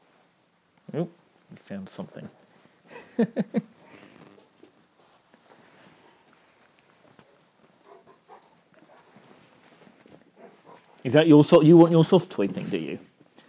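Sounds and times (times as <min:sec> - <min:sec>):
speech: 0:00.9 - 0:03.7, 0:11.0 - 0:13.1
light shuffling movements: 0:03.7 - 0:13.4
animal sniffing at shoes: 0:07.8 - 0:11.1.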